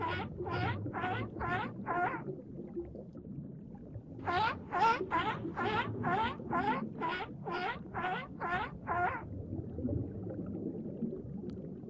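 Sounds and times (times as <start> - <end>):
seal chirping calls: 0.0 - 2.2, 4.2 - 9.2
low watery rumble: 0.0 - 11.8.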